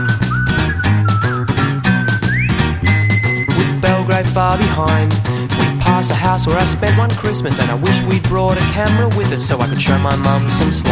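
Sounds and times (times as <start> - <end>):
person whistling a cheerful tune: 0.0 - 4.1, 9.2 - 10.9
full band with thumping beat and bass: 0.0 - 10.9
speech: 6.0 - 10.9.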